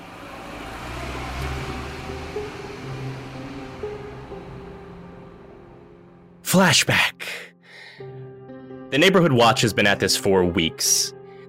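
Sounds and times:
car engine humming as the car drives off toward a mansion: 0.0 - 6.4
road noise: 0.0 - 6.6
speech: 6.5 - 8.2, 8.9 - 11.2.

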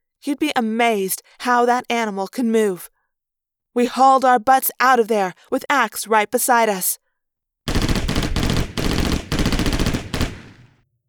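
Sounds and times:
speech: 0.2 - 2.9, 3.8 - 7.0
loud automatic gunfire: 7.7 - 10.8.

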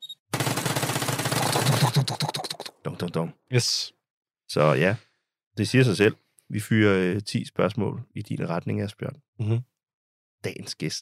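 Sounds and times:
automatic gunfire sound effect: 0.3 - 1.8
speech: 3.0 - 9.7, 10.4 - 10.9.

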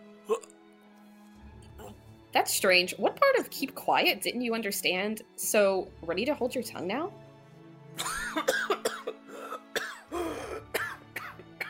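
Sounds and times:
speech: 0.3 - 0.6, 2.3 - 7.2
person coughing: 8.0 - 11.6.

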